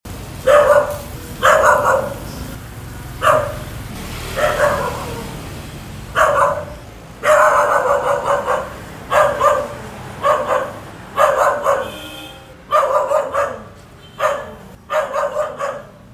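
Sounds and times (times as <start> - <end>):
dog barking: 0.4 - 2.5, 3.2 - 3.7, 4.3 - 5.4, 6.1 - 16.1.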